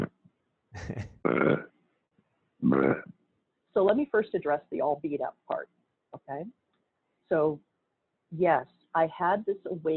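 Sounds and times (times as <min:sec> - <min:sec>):
speech: 0:00.8 - 0:01.7, 0:02.6 - 0:03.1, 0:03.8 - 0:06.6, 0:07.3 - 0:07.7, 0:08.3 - 0:09.9
throaty gurgling burps: 0:00.8 - 0:01.7, 0:02.6 - 0:03.2.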